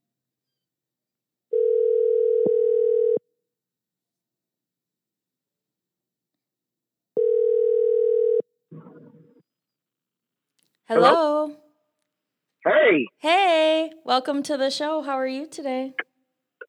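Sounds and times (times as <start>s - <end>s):
telephone ringing tone while placing a call: 1.6s - 3.2s, 7.2s - 8.4s
speech: 10.9s - 11.6s, 12.9s - 16.1s.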